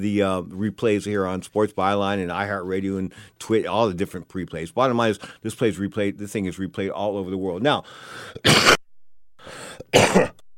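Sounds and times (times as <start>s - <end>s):
speech: 0.0s - 8.8s, 9.8s - 10.4s
breathy exhale: 7.8s - 8.4s, 9.4s - 9.9s
man with a cold coughing: 8.3s - 8.8s, 9.7s - 10.4s.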